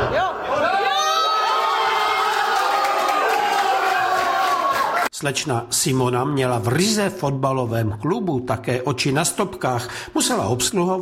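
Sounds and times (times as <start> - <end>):
many overlapping fans whooping and shouting: 0.0 - 5.1
pub crowd of football fans cheering a goal in Czech Republic: 0.0 - 5.1
speech: 5.2 - 10.9.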